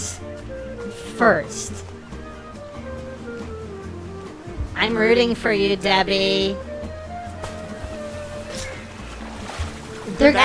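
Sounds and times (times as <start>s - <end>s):
speech: 0.5s - 2.0s, 4.8s - 6.7s, 10.1s - 10.4s
water splashing: 1.4s - 10.4s.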